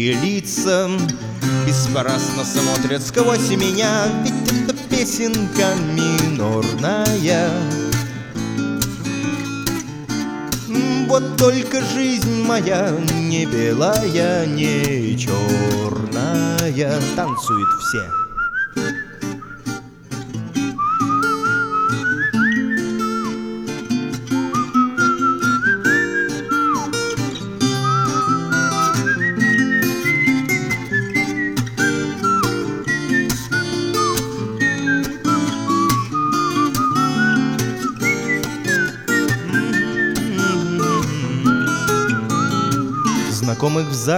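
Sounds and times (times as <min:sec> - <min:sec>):
speech: 0:00.0 - 0:07.9, 0:11.1 - 0:18.2
musical backing: 0:00.0 - 0:44.1
whistled melody: 0:01.2 - 0:44.1.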